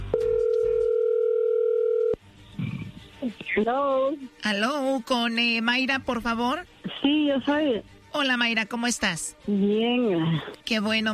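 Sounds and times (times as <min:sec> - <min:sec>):
telephone dial tone: 0:00.2 - 0:02.2
speech: 0:03.6 - 0:11.1.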